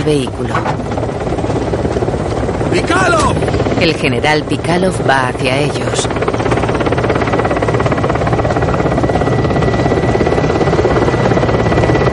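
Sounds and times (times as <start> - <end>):
speech: 0.0 - 1.3, 2.7 - 6.4
helicopter engine and rotor running: 0.0 - 12.1.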